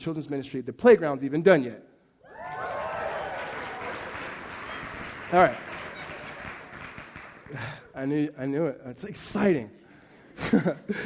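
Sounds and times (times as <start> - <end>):
speech: 0.0 - 2.6, 5.3 - 5.7, 7.5 - 9.8, 10.4 - 11.0
roomful of people applauding: 2.3 - 7.9.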